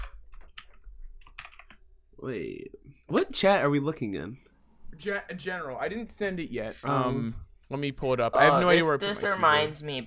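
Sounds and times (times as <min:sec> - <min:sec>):
computer keyboard typing: 0:00.0 - 0:01.9
speech: 0:02.2 - 0:10.0.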